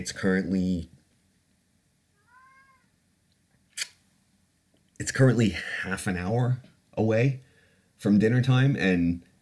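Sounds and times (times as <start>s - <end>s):
speech: 0.0s - 0.9s, 5.0s - 9.3s
food-obsessed cat meowing while waiting for its meal: 2.1s - 3.0s.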